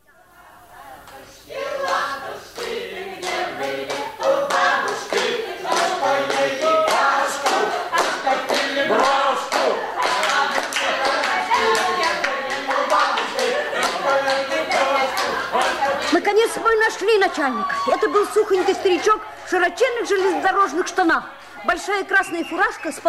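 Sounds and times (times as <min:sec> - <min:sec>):
rhythmic hand clapping for dancers at a railway station: 0:01.0 - 0:16.7
laughter: 0:11.1 - 0:20.8
speech: 0:17.3 - 0:23.0.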